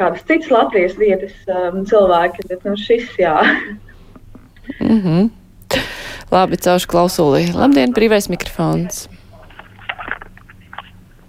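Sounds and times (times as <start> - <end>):
speech: 0.0 - 3.9, 4.8 - 9.2
faint low hum: 0.0 - 11.2
paper pages rustling as if through a phone line: 9.4 - 11.0.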